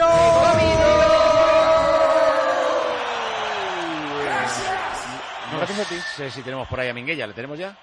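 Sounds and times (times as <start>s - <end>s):
group shouting a battle cry: 0.3s - 5.4s
speech: 5.9s - 7.8s.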